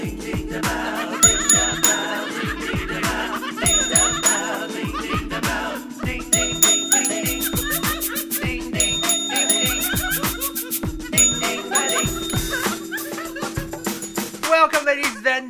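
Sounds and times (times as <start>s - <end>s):
speech: 0.0s - 0.9s
laughter: 0.9s - 8.3s, 11.7s - 15.4s
bell ringing: 1.2s - 2.7s, 3.6s - 5.2s, 6.3s - 14.7s.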